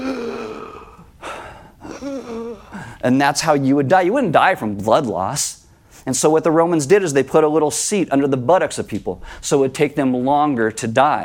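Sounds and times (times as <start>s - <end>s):
voice imitating a gasp for breath: 0.0s - 3.0s
speech: 2.0s - 11.2s.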